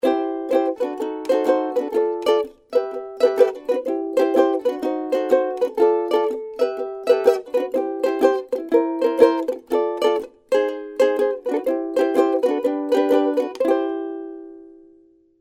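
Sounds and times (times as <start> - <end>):
ukulele shuffle rhythm: 0.0 - 15.0.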